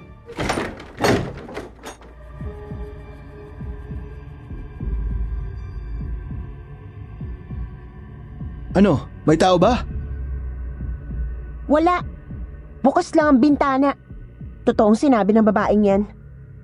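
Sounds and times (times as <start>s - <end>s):
door being shut with clattering knocks: 0.3s - 2.2s
door latch rattling: 0.3s - 2.4s
speech: 8.8s - 9.9s, 11.7s - 12.1s, 12.8s - 14.0s, 14.7s - 16.2s.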